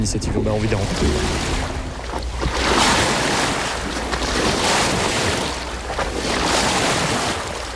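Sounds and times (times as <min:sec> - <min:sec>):
speech: 0:00.0 - 0:01.7
water rushing and splashing past a flat-bottomed river barge: 0:00.0 - 0:07.7.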